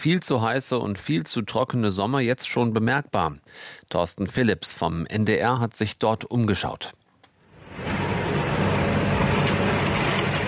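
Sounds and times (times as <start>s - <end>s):
speech: 0.0s - 7.0s
rattling machinery noise of a tractor-mounted hoe: 7.6s - 10.4s
tractor fitted with a large hoe driving through cut grass in a field: 7.6s - 10.4s.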